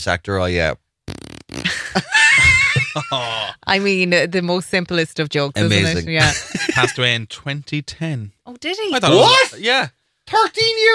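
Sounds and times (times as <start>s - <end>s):
speech: 0.0s - 0.8s, 1.5s - 2.2s, 2.9s - 10.9s
person making a fart imitation with the voice: 1.1s - 3.7s, 5.6s - 6.0s
breathy sputter: 1.5s - 3.9s
laughter: 1.7s - 4.0s, 5.6s - 7.0s.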